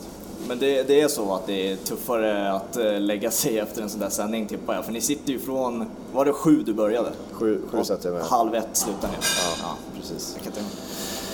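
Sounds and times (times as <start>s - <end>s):
speech: 0.5s - 11.1s
dishes and cutlery clinking in a busy cafeteria: 8.8s - 9.8s.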